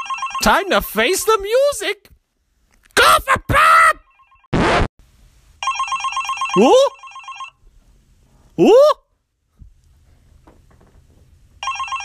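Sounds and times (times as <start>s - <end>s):
telephone ringing: 0.0s - 0.7s, 5.6s - 7.6s, 11.6s - 12.0s
speech: 0.4s - 2.1s, 3.0s - 4.0s, 6.6s - 7.0s, 8.6s - 9.0s
person exclaiming questioningly: 3.0s - 4.0s, 6.6s - 7.0s, 8.6s - 9.0s.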